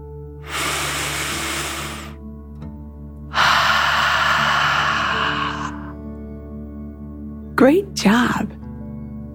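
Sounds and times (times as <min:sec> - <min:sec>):
deep noisy breath drawn in: 0:00.4 - 0:02.2, 0:03.3 - 0:06.0
forceful exhale through the mouth: 0:00.4 - 0:02.2, 0:03.3 - 0:06.0
speech: 0:07.6 - 0:08.6.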